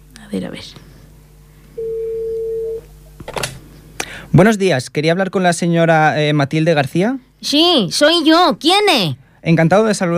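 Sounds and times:
speech: 0.3s - 0.9s, 4.3s - 10.1s
telephone dial tone beep while placing a call from a studio: 1.8s - 2.8s.

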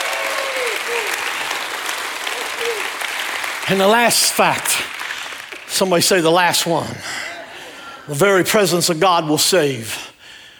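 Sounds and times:
audience voices shouting and whooping: 0.0s - 1.4s, 2.2s - 3.0s
audience applause: 0.0s - 6.9s
speech: 3.7s - 4.9s, 5.7s - 7.2s, 8.1s - 10.1s.

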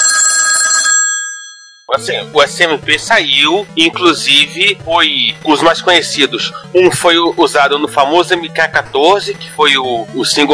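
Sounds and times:
telephone bell ringing with a metallic jangle: 0.0s - 1.9s
speech: 1.9s - 10.5s.

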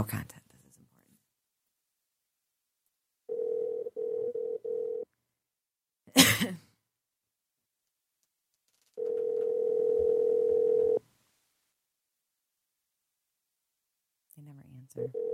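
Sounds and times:
speech: 0.0s - 0.3s
telephone dial tone while dialing: 3.3s - 5.1s, 9.0s - 11.0s, 15.0s - 15.3s.

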